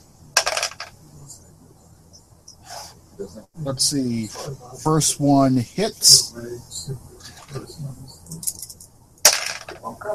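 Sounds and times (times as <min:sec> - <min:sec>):
dice rolling on a table: 0:00.4 - 0:01.0, 0:09.3 - 0:09.8
speech: 0:03.2 - 0:08.8, 0:09.8 - 0:10.1.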